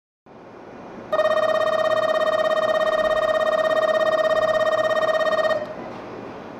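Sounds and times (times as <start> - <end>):
bell: 1.1 - 5.8.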